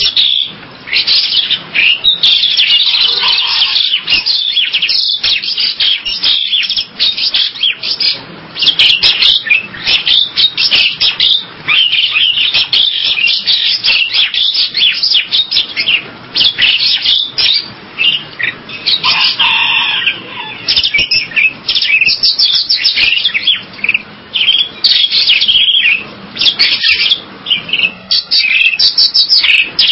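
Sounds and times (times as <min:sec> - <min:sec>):
bird twittering and warbling: 0:00.0 - 0:29.9.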